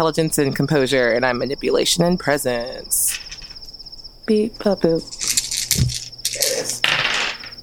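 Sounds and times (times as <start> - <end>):
speech: 0.0 - 3.3, 4.3 - 6.0
dice clattering as rolled for a tabletop game: 3.1 - 3.6, 5.0 - 7.6.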